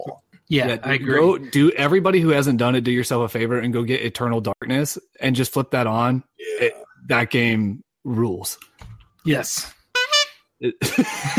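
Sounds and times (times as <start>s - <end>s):
speech: 0.0s - 9.8s, 10.6s - 11.3s
air horn blast: 10.0s - 10.4s
people laughing: 10.8s - 11.3s.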